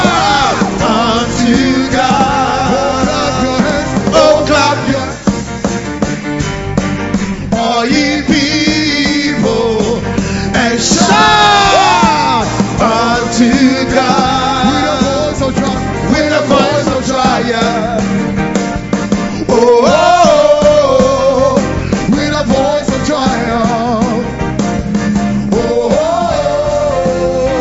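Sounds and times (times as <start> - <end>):
audience shouting and whooping: 0.0 - 0.8, 10.9 - 12.6
audience rhythmic clapping: 0.0 - 10.0, 10.6 - 27.5.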